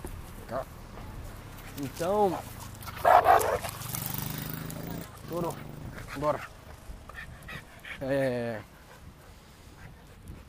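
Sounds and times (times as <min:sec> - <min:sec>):
speech: 0:00.5 - 0:00.8, 0:01.8 - 0:02.6, 0:05.3 - 0:06.6, 0:08.0 - 0:08.7
dog barking: 0:03.0 - 0:03.6.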